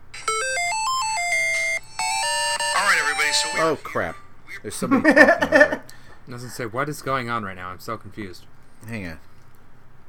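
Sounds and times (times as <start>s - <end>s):
electronic video game startup jingle played from a phone speaker: 0.1s - 4.1s
speech: 3.3s - 9.3s
laughter: 4.8s - 5.9s.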